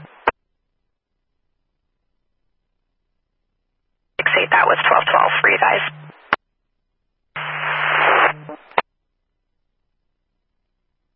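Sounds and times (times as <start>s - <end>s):
harsh radio static hiss: 0.0s - 0.3s, 4.2s - 6.4s, 7.4s - 8.8s
speech: 4.5s - 6.0s.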